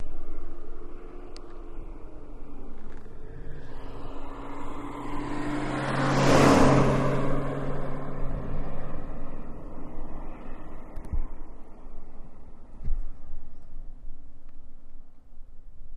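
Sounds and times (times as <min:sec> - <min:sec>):
Mustang passing by on highway: 0:00.3 - 0:12.5.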